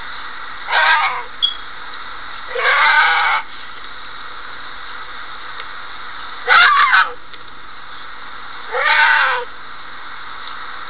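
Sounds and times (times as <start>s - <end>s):
cougar crying: 0.7s - 1.3s, 2.5s - 3.5s, 6.4s - 7.2s, 8.7s - 9.5s.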